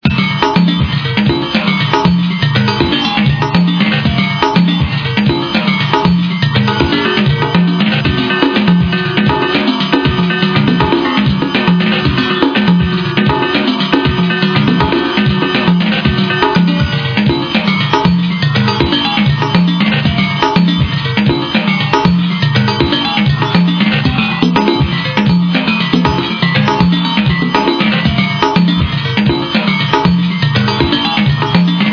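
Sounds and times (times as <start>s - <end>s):
noisy percussion: 0.0s - 31.9s.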